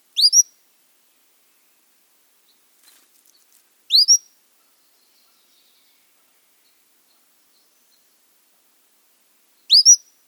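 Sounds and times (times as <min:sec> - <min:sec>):
Cordilleran Flycatcher rising double-noted whistle call: 0:00.2 - 0:00.5, 0:03.9 - 0:04.3, 0:09.7 - 0:10.1.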